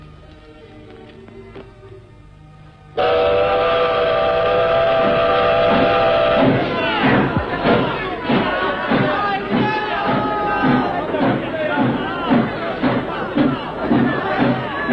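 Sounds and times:
steam train chuffing getting under way: 3.0 - 14.9.

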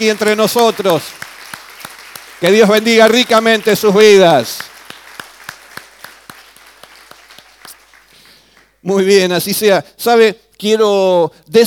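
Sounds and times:
speech: 0.0 - 1.3, 2.4 - 4.7, 8.8 - 11.6
audience applause at a community gathering: 0.0 - 8.8.

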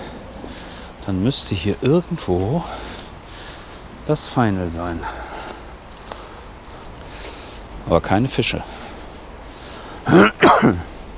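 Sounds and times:
low steady hiss: 0.0 - 11.1
speech: 1.0 - 3.0, 4.0 - 5.3, 7.9 - 8.8, 10.1 - 10.9
throaty coughs: 10.0 - 10.9.

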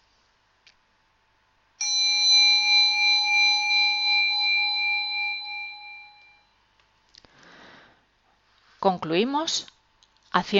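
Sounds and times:
meditation bell ringing: 1.8 - 6.6
speech: 8.8 - 9.7, 10.3 - 10.5.

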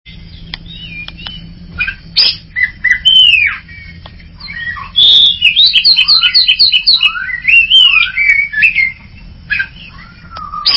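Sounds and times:
greater green leafbird singing: 0.1 - 10.7
low hum: 0.1 - 10.7.

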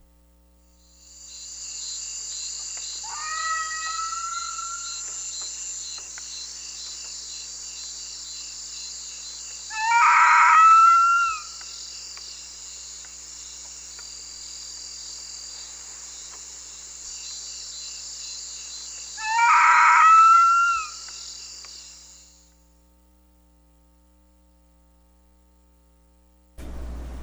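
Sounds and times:
high chorus of crickets: 0.7 - 22.7
crab-eating fox Cerdocyon thous yelping calls: 3.0 - 5.1, 9.7 - 11.6, 19.2 - 21.2.

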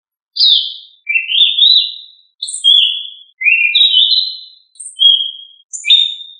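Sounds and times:
thrush of family Turdidae singing clear whistled phrases: 0.4 - 6.3.

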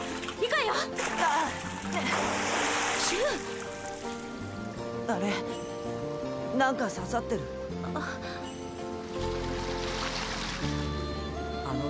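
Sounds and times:
water rushing steadily along a stream: 0.0 - 4.8, 8.8 - 11.0
speech: 0.6 - 4.2, 5.1 - 8.4.

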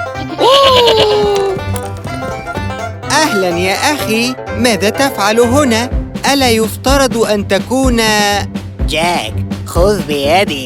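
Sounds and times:
goat bleating in a cartoon fairy tale: 0.2 - 1.6
speech: 3.3 - 10.6.

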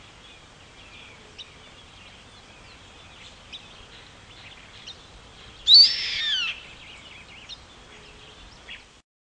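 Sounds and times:
yellow-headed caracara harsh raspy scream: 5.7 - 6.6.

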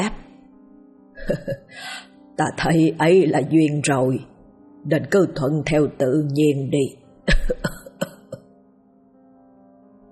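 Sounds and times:
speech: 1.3 - 7.8
old man's dry harsh cough: 7.3 - 8.4.

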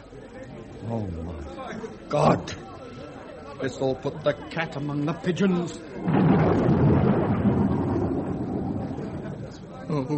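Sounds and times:
speech: 0.9 - 2.7, 3.6 - 6.3, 10.0 - 10.1
thunderstorm continuous low rumble: 6.0 - 9.9.

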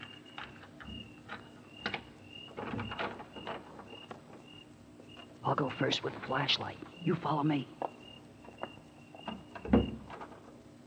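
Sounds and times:
door being opened: 0.0 - 4.4, 9.2 - 10.5
faint steady whine: 0.0 - 10.8
speech: 5.5 - 7.8.

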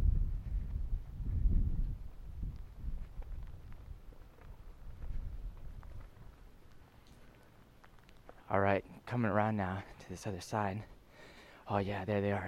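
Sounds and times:
wind buffeting the microphone on a windy day in Vancouver Canada: 0.0 - 6.5
speech: 8.5 - 11.0, 11.7 - 12.4.

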